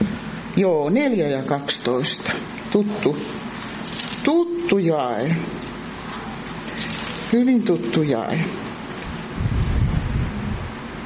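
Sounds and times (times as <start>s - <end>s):
speech: 0.6s - 3.4s, 4.2s - 5.7s, 7.3s - 8.6s
wind buffeting a microphone outdoors: 9.3s - 10.8s.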